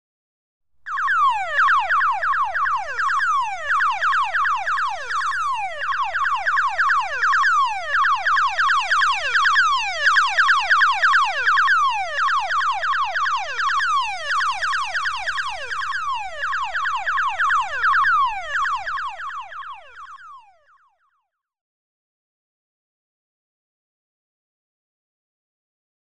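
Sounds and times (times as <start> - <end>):
electronic alarm: 0.9 - 20.9.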